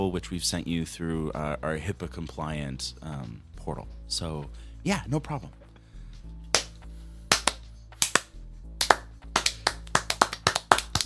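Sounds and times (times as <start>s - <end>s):
speech: 0.1s - 5.6s
hands clapping: 6.5s - 11.0s.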